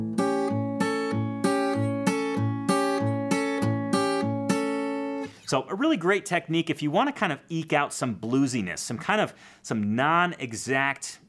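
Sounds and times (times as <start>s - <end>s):
acoustic guitar upward brushes with pinky on fifth fret of high E string: 0.0s - 5.6s
speech: 5.5s - 11.2s.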